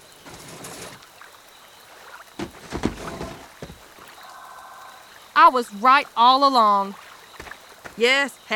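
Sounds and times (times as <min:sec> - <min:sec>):
sloshing lake water: 0:00.0 - 0:08.3
small fishing boat scraping and splashing as shoved into a lake: 0:00.2 - 0:01.0, 0:02.3 - 0:03.9
faint bird call: 0:04.1 - 0:05.2
speech: 0:05.4 - 0:07.0, 0:08.0 - 0:08.5.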